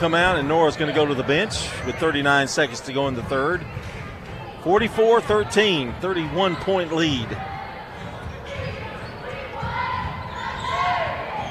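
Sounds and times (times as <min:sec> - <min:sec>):
speech: 0:00.0 - 0:04.0, 0:04.6 - 0:07.5
basketballs bouncing in an auxiliary gym during warm-up: 0:00.0 - 0:11.5
squeaks in a gym: 0:08.5 - 0:11.5.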